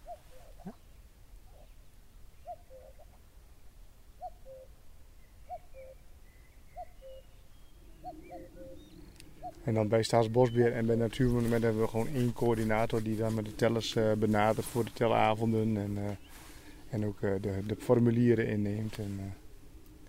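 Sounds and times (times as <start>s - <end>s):
common cuckoo calling: 0.0s - 0.9s, 2.4s - 3.2s, 4.2s - 4.8s, 5.4s - 12.2s
faint other birds: 0.0s - 20.0s
speech: 9.6s - 19.4s.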